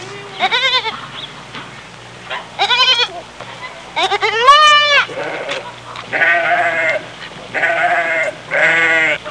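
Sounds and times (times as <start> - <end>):
lamb bleating: 0.4 - 1.0, 2.6 - 3.2, 4.0 - 9.2.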